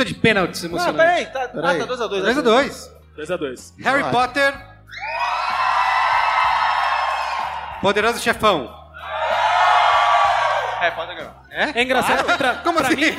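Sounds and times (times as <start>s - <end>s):
speech: 0.0s - 5.2s, 7.8s - 8.8s, 10.8s - 13.1s
audience shouting and cheering a vote: 4.9s - 8.2s, 8.9s - 11.2s.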